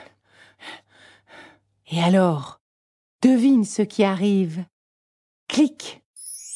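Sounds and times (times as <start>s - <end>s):
out-of-breath panting: 0.0s - 1.7s
speech: 1.9s - 2.6s, 3.2s - 4.7s, 5.6s - 6.0s.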